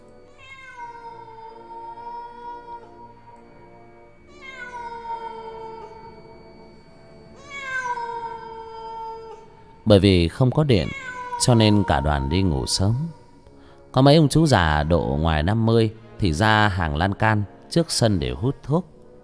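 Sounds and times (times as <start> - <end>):
stray cats yowling mournfully in a cemetery at night: 0.3 - 3.3, 4.2 - 6.5, 7.3 - 9.8, 10.6 - 13.4
speech: 9.9 - 13.2, 14.0 - 18.9.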